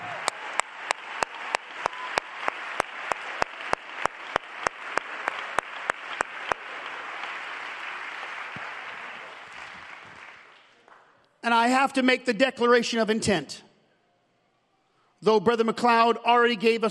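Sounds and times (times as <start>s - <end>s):
audience clapping in rhythm at a church service: 0.0s - 11.4s
crowd noise: 0.0s - 11.4s
speech: 11.5s - 13.7s, 15.2s - 16.8s.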